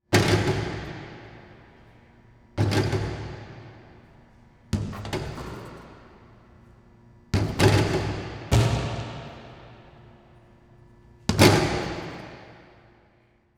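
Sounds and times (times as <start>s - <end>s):
basketball shooting baskets in a gym: 0.0s - 13.5s.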